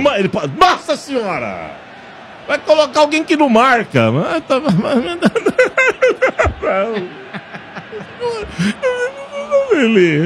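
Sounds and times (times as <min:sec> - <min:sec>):
speech: 0:00.0 - 0:10.2
laughter: 0:04.0 - 0:10.2
person whimpering and crying: 0:08.3 - 0:09.7.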